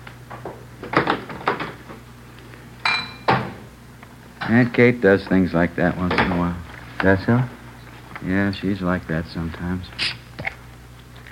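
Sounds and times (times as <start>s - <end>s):
low steady hum: 0.0s - 11.3s
dishes clattering and clinking while cleaning up a kitchen: 2.8s - 3.6s
speech: 4.5s - 7.6s, 8.2s - 10.2s.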